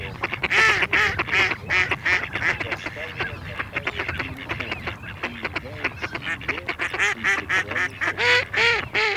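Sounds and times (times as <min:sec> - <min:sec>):
mallard quacks from a decoy call played back: 0:00.0 - 0:09.1.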